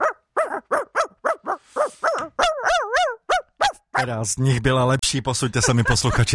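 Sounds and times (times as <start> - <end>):
person imitating a dog barking and yelping: 0.0 - 4.2
speech: 4.0 - 6.3
laughter: 5.4 - 6.3.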